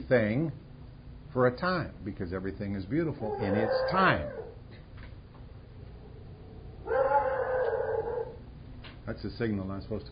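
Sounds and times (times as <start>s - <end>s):
speech: 0.1s - 0.6s, 1.3s - 4.5s, 9.1s - 10.1s
dog howling: 3.2s - 4.6s, 5.9s - 8.4s.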